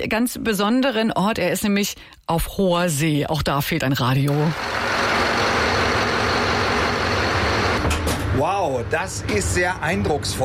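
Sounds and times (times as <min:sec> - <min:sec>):
speech: 0:00.0 - 0:04.9, 0:08.4 - 0:10.4
large ship's bow thruster motor running: 0:04.5 - 0:07.9.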